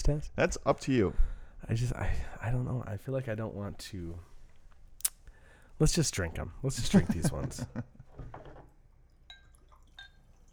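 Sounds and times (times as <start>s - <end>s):
speech: 0.0s - 4.3s, 5.8s - 8.4s
laughter: 6.7s - 8.2s
root beer pouring into a glass: 8.4s - 10.5s.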